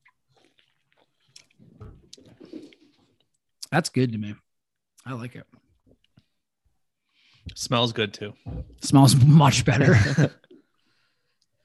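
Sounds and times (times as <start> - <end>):
person sipping a sour hard seltzer: 0.0 - 3.4
slurps, smacks and swallows while drinking hard seltzer: 0.0 - 3.4
speech: 3.7 - 4.4, 5.0 - 5.6, 7.6 - 10.4.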